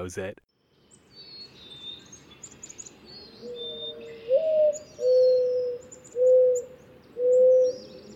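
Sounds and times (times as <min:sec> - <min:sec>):
speech: 0:00.0 - 0:00.5
faint chirping birds: 0:00.5 - 0:08.1
mourning dove cooing: 0:03.0 - 0:08.1.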